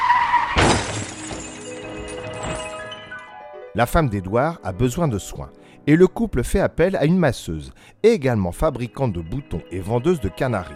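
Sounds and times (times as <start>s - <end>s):
car tire screech: 0.0s - 0.8s
car crash impact: 0.3s - 1.7s
glass shattering: 0.3s - 3.3s
debris clattering and ringing: 0.5s - 3.2s
speech: 3.8s - 10.7s.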